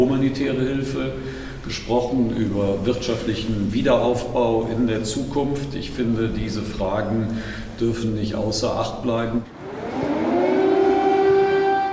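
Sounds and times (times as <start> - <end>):
speech: 0.1 - 9.5
air raid siren wailing in a city: 9.5 - 11.9.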